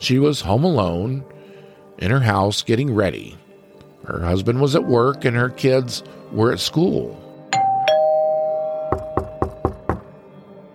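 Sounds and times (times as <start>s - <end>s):
speech: 0.0s - 1.4s, 2.0s - 3.4s, 4.0s - 7.2s
two-tone doorbell chime at a house's front door: 7.6s - 9.8s
knocks on a front door: 8.9s - 10.2s.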